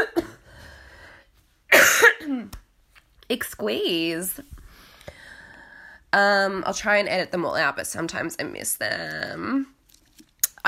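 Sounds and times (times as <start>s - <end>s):
person coughing: 1.7s - 2.5s
speech: 2.2s - 2.6s, 3.3s - 4.6s, 6.1s - 9.7s.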